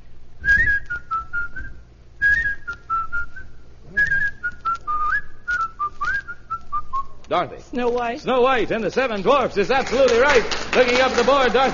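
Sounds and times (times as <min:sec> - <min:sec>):
person whistling a bright bouncy melody: 0:00.4 - 0:07.2
speech: 0:07.3 - 0:11.7.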